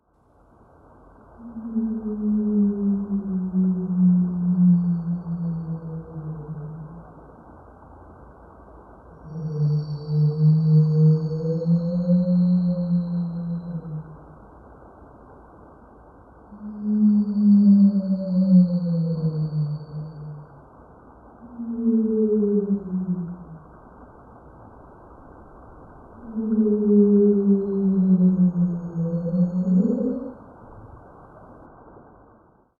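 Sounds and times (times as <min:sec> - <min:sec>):
whale call underwater: 0:01.4 - 0:07.1, 0:09.2 - 0:14.4, 0:16.5 - 0:20.7, 0:21.4 - 0:23.8, 0:26.2 - 0:30.5.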